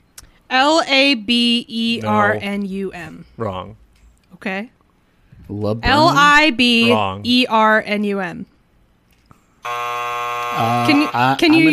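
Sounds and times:
speech: 0:00.5 - 0:03.8, 0:04.4 - 0:04.8, 0:05.5 - 0:08.5, 0:09.6 - 0:11.7
harsh wrong-answer buzzer in a spelling game: 0:09.6 - 0:11.7.

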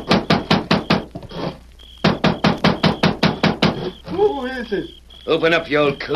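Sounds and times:
heavy pounding on a wooden cabin door: 0:00.0 - 0:01.2, 0:02.0 - 0:04.0
speech: 0:04.7 - 0:06.1.

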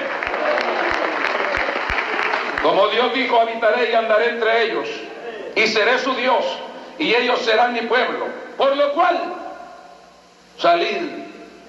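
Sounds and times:
audience applause at a church service: 0:00.0 - 0:03.2
speech: 0:02.6 - 0:05.0, 0:05.6 - 0:09.4, 0:10.6 - 0:11.2.

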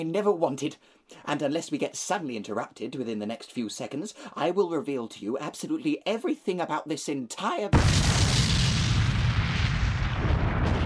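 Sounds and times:
speech: 0:00.0 - 0:08.4
dense crackling debris: 0:07.8 - 0:10.8
explosion blowing doors off hinges with low rumble: 0:07.8 - 0:10.8.

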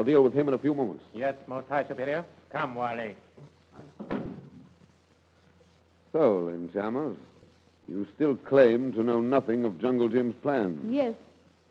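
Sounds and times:
speech: 0:00.0 - 0:04.1, 0:06.1 - 0:07.3, 0:07.9 - 0:11.3
door opening with a clunk: 0:04.0 - 0:04.5.

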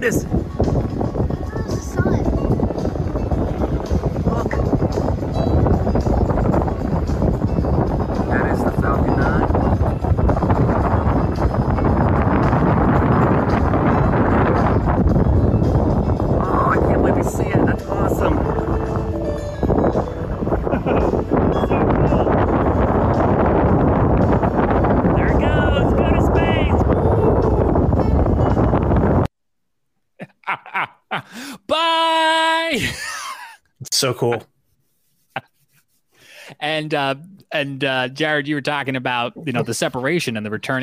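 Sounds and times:
speech: 0:00.0 - 0:01.0, 0:34.0 - 0:34.5, 0:36.8 - 0:40.8
theme park music: 0:00.0 - 0:29.3
wind buffeting a microphone at a theme park: 0:00.0 - 0:29.3
laughter: 0:20.7 - 0:21.3, 0:30.2 - 0:31.6, 0:32.7 - 0:34.4.

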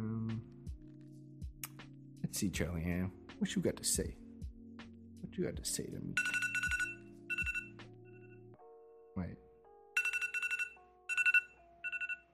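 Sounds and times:
speech: 0:02.3 - 0:04.2, 0:05.4 - 0:06.4
bright electronic phone alarm ringtone: 0:06.2 - 0:08.4, 0:10.0 - 0:12.3.

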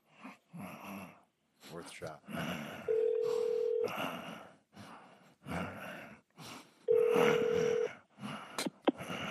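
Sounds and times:
noisy background: 0:00.0 - 0:09.2
speech: 0:01.7 - 0:02.9, 0:03.8 - 0:04.5
telephone ringback tone during call transfer to a motel operator: 0:02.9 - 0:03.9, 0:06.9 - 0:07.9.

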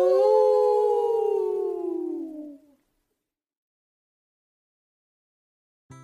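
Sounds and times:
long loud dog-like howl: 0:00.0 - 0:02.7.

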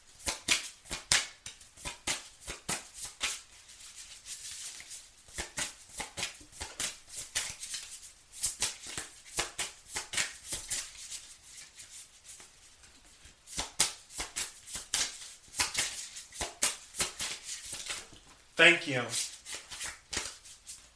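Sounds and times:
deck of cards being shuffled and drawn: 0:00.2 - 0:18.2, 0:19.1 - 0:20.9
speech: 0:18.6 - 0:19.3.

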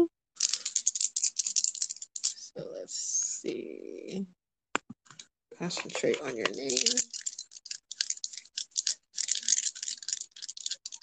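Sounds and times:
dice rattling and clattering: 0:00.4 - 0:02.5, 0:05.6 - 0:11.0
speech: 0:02.9 - 0:04.4, 0:05.6 - 0:07.2.

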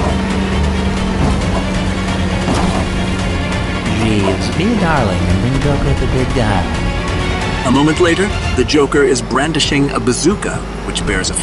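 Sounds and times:
car ramming into the back of an armored car: 0:00.0 - 0:03.9
heavy vehicle engines roaring during a chase: 0:00.0 - 0:11.4
speech: 0:04.6 - 0:06.9, 0:07.6 - 0:11.4.

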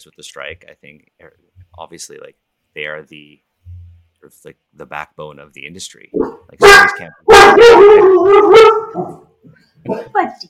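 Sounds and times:
speech: 0:00.0 - 0:03.5, 0:04.2 - 0:10.4
dog barking: 0:06.2 - 0:09.2, 0:09.9 - 0:10.2.

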